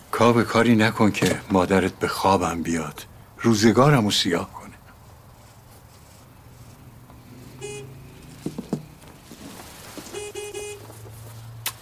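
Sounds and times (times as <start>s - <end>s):
low traffic rumble: 0.0s - 11.8s
speech: 0.2s - 4.6s
car horn honking: 7.5s - 8.4s, 9.9s - 11.2s.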